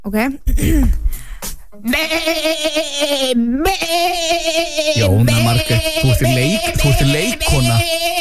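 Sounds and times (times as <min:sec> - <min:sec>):
speech: 0:00.0 - 0:08.1
person imitating goat bleating: 0:01.9 - 0:08.1.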